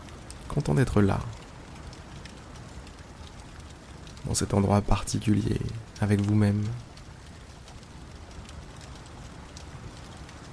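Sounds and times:
rain mixed with wet snow pattering on a surface: 0.0 - 10.5
speech: 0.5 - 1.4, 4.3 - 6.9.

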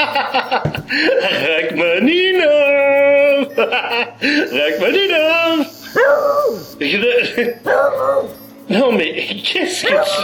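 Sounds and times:
laughter: 0.0 - 1.8, 3.4 - 4.6
speech: 0.1 - 2.7, 3.6 - 10.2
dog whimpering and yelping: 6.0 - 6.7, 7.5 - 8.5, 9.8 - 10.2.

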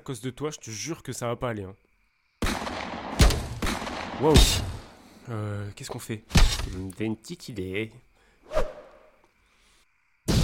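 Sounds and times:
speech: 0.0 - 1.9, 4.2 - 4.7, 5.3 - 8.7
dense sustained burst of gunfire: 2.4 - 5.0.

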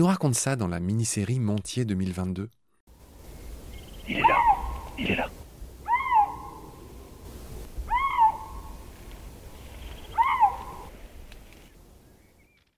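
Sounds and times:
speech: 0.0 - 2.6, 4.1 - 4.4, 5.0 - 5.4
male lynx calling to females in a forest in the Jura: 4.0 - 6.9, 7.8 - 8.8, 10.1 - 10.9.

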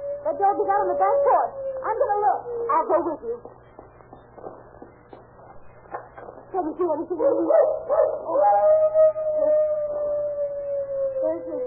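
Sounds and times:
dog howling: 0.0 - 3.2, 7.2 - 11.6
low hum: 0.0 - 11.6
speech: 0.3 - 3.6, 6.5 - 9.5, 11.2 - 11.6.

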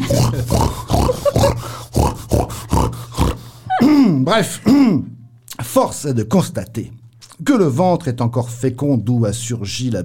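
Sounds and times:
pig grunting and oinking: 0.0 - 4.0
speech: 4.3 - 5.1, 5.7 - 10.0.

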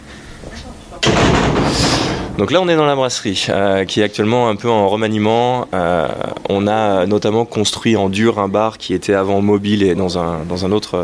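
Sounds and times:
harsh clattering noise: 1.0 - 2.7
metal door slamming shut at a brewery entrance: 1.0 - 2.7
speech: 2.4 - 11.0.

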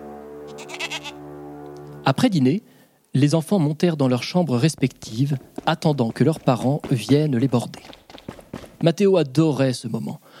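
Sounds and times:
goat bleating: 0.5 - 1.2
speech: 0.6 - 1.3, 2.1 - 10.3.

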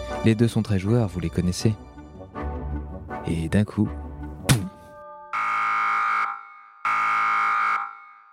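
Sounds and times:
speech: 0.2 - 1.9, 3.3 - 4.0
button press thunk: 4.4 - 4.9
loud steady electronic alarm: 5.3 - 8.3.

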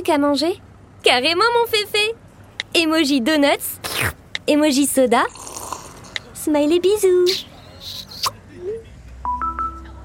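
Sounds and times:
speech: 0.0 - 2.2, 2.8 - 5.4, 6.4 - 8.0
electronic phone alert beeps for an incoming text message: 9.2 - 10.0.

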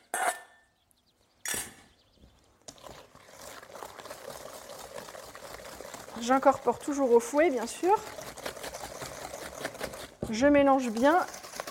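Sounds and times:
beaten eggs poured into a mixture: 2.6 - 9.6
speech: 6.2 - 8.2, 10.3 - 11.4.

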